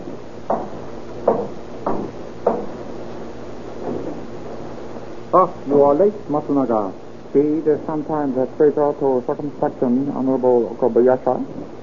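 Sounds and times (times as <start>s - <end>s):
knocking on a wooden house door: 0.5s - 2.8s
speech: 5.3s - 11.8s.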